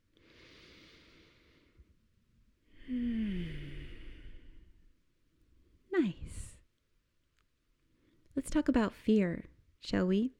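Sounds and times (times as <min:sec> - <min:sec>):
deep breath drawn in and let out: 0:00.0 - 0:02.0, 0:02.6 - 0:05.0
speech: 0:08.4 - 0:10.3.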